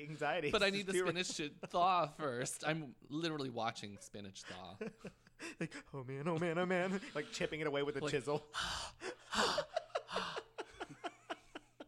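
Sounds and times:
speech: 0:00.0 - 0:09.7
laughter: 0:00.5 - 0:02.4, 0:04.4 - 0:11.8
person breathing heavily and puffing: 0:08.5 - 0:10.6.

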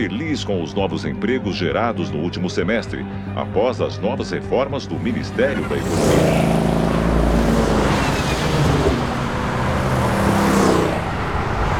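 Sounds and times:
speech: 0:00.0 - 0:06.6
engine rumble of a fleet of driverless cars: 0:04.9 - 0:11.7
vehicle passing: 0:05.0 - 0:11.7.

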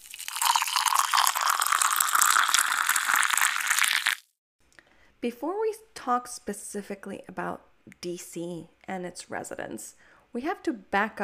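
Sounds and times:
coffee being poured into a cup: 0:00.0 - 0:04.2
speech: 0:05.2 - 0:11.2.

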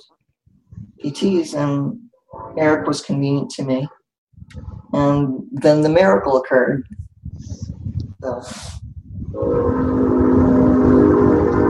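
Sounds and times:
speech: 0:01.0 - 0:02.0, 0:02.6 - 0:07.6, 0:08.2 - 0:10.6
train rumbling past: 0:09.3 - 0:11.6.

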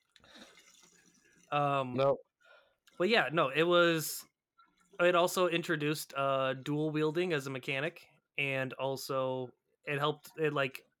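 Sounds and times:
spilled water splashing: 0:00.3 - 0:01.5
speech: 0:01.5 - 0:02.3, 0:03.0 - 0:04.3, 0:05.0 - 0:10.9.

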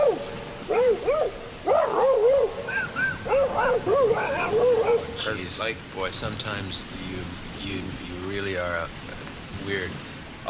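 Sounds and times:
person imitating a dogfight with barks and yelps: 0:00.0 - 0:05.3
speech: 0:05.6 - 0:09.1, 0:09.7 - 0:10.4.

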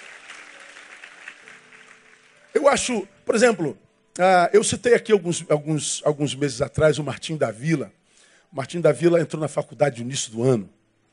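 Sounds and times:
crowd applauding: 0:00.0 - 0:02.9
speech: 0:02.5 - 0:10.8.

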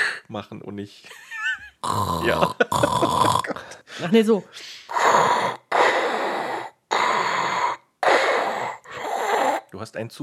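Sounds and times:
voice imitating heavy mechanical respirator breathing with hissing breaths: 0:00.0 - 0:00.3, 0:03.6 - 0:09.7
speech: 0:00.3 - 0:05.3, 0:09.7 - 0:10.2.

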